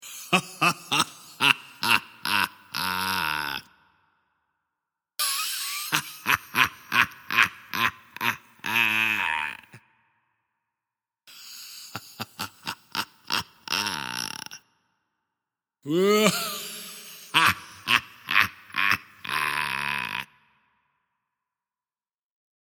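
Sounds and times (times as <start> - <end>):
sinister evil male laughs: 0.0 - 3.6, 5.2 - 9.8, 11.4 - 14.6, 15.9 - 20.3.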